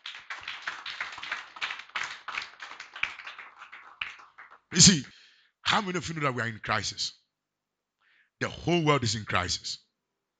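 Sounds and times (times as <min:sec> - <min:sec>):
audience clapping during a sermon: 0:00.0 - 0:05.1
speech: 0:04.7 - 0:05.1, 0:05.7 - 0:07.2, 0:08.4 - 0:09.8.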